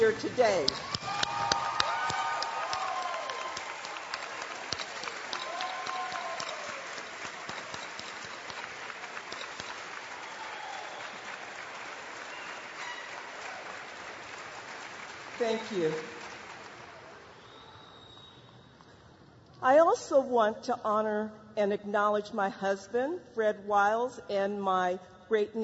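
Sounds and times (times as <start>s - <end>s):
speech: 0.1s - 1.4s, 15.4s - 16.1s, 19.6s - 25.6s
large graduation audience applauding: 0.2s - 17.8s
cheers and whoops from graduation audience: 0.8s - 7.1s, 10.2s - 11.3s.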